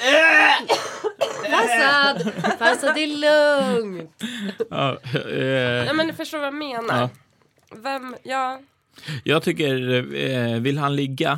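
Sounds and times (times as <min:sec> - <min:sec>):
person coughing: 0:00.0 - 0:01.9
laughter: 0:01.5 - 0:05.9
speech: 0:01.8 - 0:11.3.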